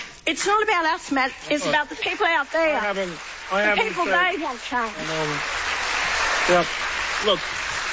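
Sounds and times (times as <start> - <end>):
speech: 0.3 - 5.6, 6.4 - 7.6
crowd applause: 1.8 - 7.9.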